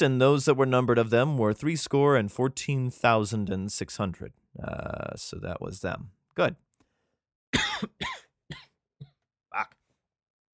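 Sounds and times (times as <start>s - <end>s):
speech: 0.0s - 6.6s
harsh hacking coughing fit: 7.6s - 8.8s.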